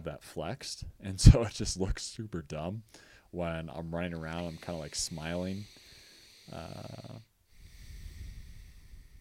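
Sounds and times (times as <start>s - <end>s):
speech: 0.0s - 5.8s, 6.5s - 7.3s
heavy nasal breathing through the nose: 2.9s - 9.1s.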